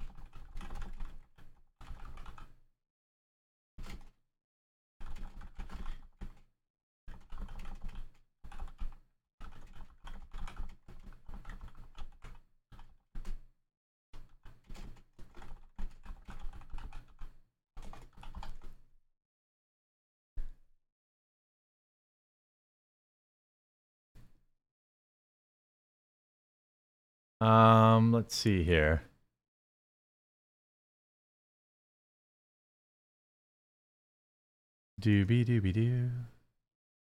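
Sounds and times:
typing on a computer keyboard: 0.0s - 2.6s, 3.8s - 4.2s, 5.0s - 6.5s, 7.1s - 13.5s, 14.2s - 18.8s
speech: 27.4s - 29.1s, 35.0s - 36.3s.

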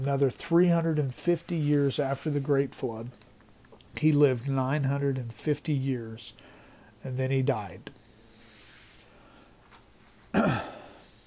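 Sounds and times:
speech: 0.0s - 3.3s, 4.0s - 8.0s
person clearing throat: 10.3s - 11.0s.

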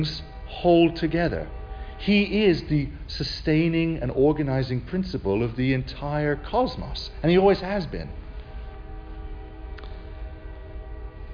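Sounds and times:
speech: 0.0s - 8.2s
deep rumble of rolling rail cars: 0.0s - 11.3s
train horn: 0.0s - 11.3s.

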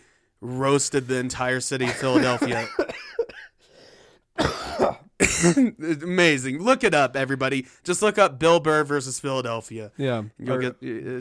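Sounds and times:
speech: 0.4s - 3.0s, 4.8s - 11.1s
harsh coughing: 1.8s - 3.6s, 4.4s - 5.8s
wheezy breath: 3.6s - 4.4s
throat clearing: 4.4s - 5.8s.

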